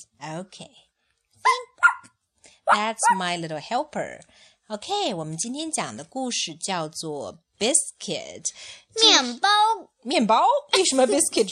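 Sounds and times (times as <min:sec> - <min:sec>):
speech: 0:00.0 - 0:00.9, 0:02.7 - 0:11.5
child imitating a dog barking: 0:01.4 - 0:02.0
child reading aloud from a storybook: 0:09.0 - 0:10.0.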